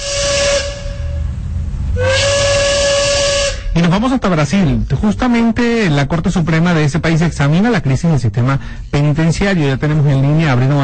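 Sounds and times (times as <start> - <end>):
steam train whistle blasts: 0.0 - 1.3, 2.0 - 3.8
steam hissing: 0.0 - 3.8
speech: 4.0 - 10.8.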